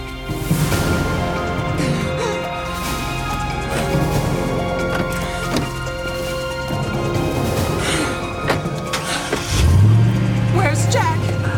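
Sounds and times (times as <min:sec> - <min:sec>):
car engine revving as the vehicle drives off: 0:00.0 - 0:11.5.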